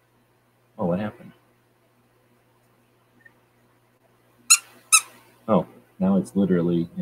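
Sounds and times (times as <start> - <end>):
speech: 1.0 - 1.4, 5.5 - 6.9
squeaker inside a pig toy squeaking: 4.5 - 5.2.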